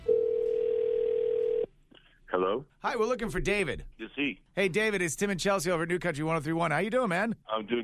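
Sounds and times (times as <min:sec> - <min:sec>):
telephone dial tone as a call is placed: 0:00.0 - 0:01.7
speech: 0:02.4 - 0:07.8.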